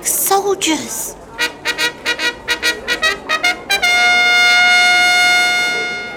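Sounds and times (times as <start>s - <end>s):
speech: 0.0s - 1.2s
orchestra playing a brass fanfare: 1.4s - 6.1s.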